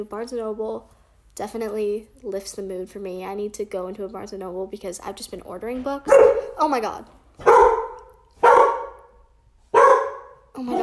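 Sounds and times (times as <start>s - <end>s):
speech: 0.0s - 7.7s, 10.6s - 10.8s
dog barking: 6.1s - 6.6s, 7.4s - 10.8s.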